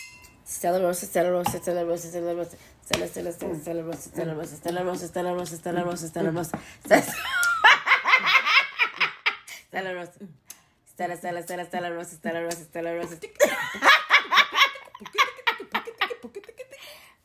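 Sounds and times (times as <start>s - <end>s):
wine glasses clinking in a toast: 0.0s - 0.4s
people talking in a lively manner: 0.5s - 7.6s, 9.6s - 10.4s, 11.0s - 17.2s
people laughing: 7.0s - 9.3s, 13.4s - 16.6s.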